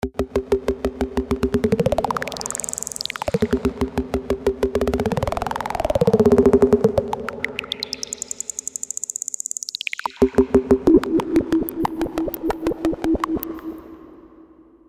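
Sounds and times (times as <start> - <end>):
V-Synth synthesizer control drops: 0.1 - 14.4.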